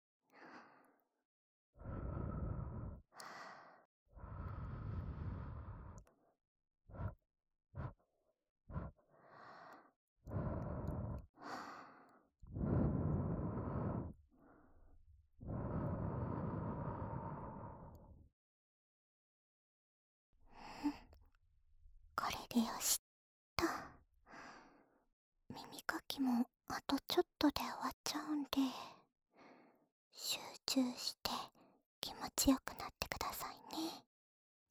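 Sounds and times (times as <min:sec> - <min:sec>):
gentle puffs of breath blown softly: 0:01.8 - 0:06.1, 0:08.7 - 0:14.8, 0:15.4 - 0:18.2
speech: 0:22.2 - 0:23.0, 0:26.2 - 0:29.0, 0:30.2 - 0:34.1.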